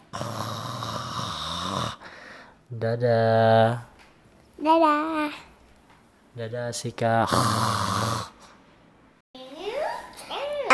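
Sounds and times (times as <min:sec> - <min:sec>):
person snoring while asleep: 0:00.0 - 0:02.1, 0:07.2 - 0:08.4
speech: 0:02.7 - 0:03.9, 0:04.6 - 0:05.5, 0:06.4 - 0:07.9.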